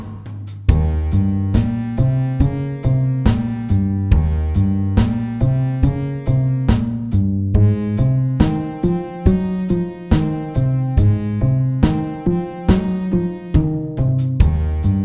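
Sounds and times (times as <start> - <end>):
slow walking bass: 0.7 - 15.0.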